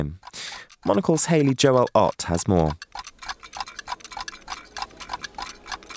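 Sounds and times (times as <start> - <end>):
speech: 0.0 - 2.9
several clocks ticking: 0.0 - 5.9.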